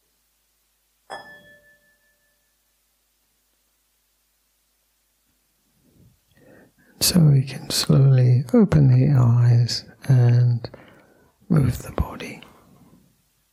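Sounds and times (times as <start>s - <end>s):
meditation bell struck to end a meditation session: 1.1s - 2.6s
speech: 7.0s - 10.8s, 11.5s - 12.4s.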